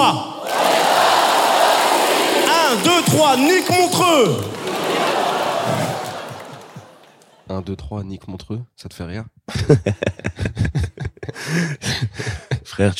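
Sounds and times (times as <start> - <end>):
large audience at a comedy gala in Lausanne shouting a chant in chorus: 0.3 - 3.7, 4.5 - 7.0
laughter: 2.4 - 7.5, 9.5 - 12.8
speech: 2.8 - 4.6, 7.5 - 10.9, 11.5 - 12.9.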